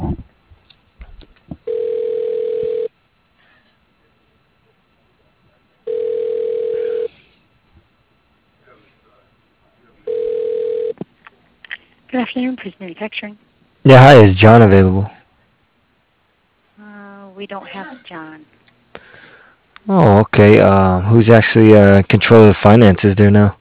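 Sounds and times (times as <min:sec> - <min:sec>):
telephone ringing tone on a line while a call is transferred: 0:01.7 - 0:03.0, 0:05.8 - 0:07.1, 0:10.0 - 0:11.0
speech: 0:12.4 - 0:15.2, 0:17.4 - 0:18.5, 0:19.8 - 0:23.6.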